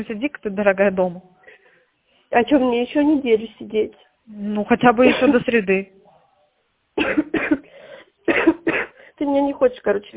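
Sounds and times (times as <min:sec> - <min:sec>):
speech: 0:00.0 - 0:01.3, 0:02.3 - 0:06.0, 0:07.0 - 0:07.3, 0:09.2 - 0:10.1
woman with a cold coughing: 0:05.0 - 0:05.6, 0:07.0 - 0:09.0
woman with a cold taking a raspy breath: 0:07.6 - 0:08.2, 0:08.9 - 0:09.2.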